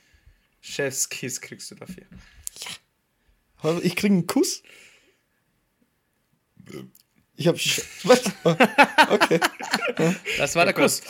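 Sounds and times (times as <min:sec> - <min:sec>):
speech: 0:00.8 - 0:02.8, 0:03.6 - 0:04.9, 0:06.7 - 0:11.0
burp: 0:06.6 - 0:07.0
laughter: 0:07.8 - 0:11.0.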